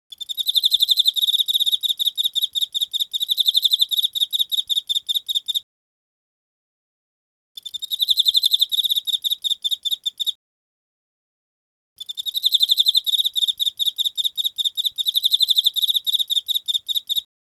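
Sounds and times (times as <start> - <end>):
emma field cricket chirping: 0.1 - 5.6, 7.6 - 10.4, 12.0 - 17.3.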